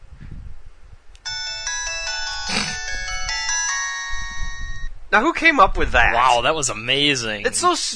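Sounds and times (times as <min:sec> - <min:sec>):
LG cell phone shutdown jingle: 0:01.3 - 0:04.9
speech: 0:05.1 - 0:07.9.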